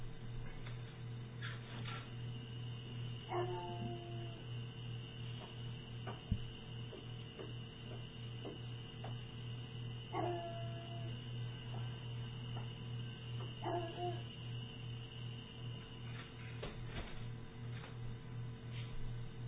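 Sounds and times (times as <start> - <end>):
steady low electrical hum: 0.0 - 19.4
dogs barking and yipping: 10.1 - 10.6, 13.6 - 14.2.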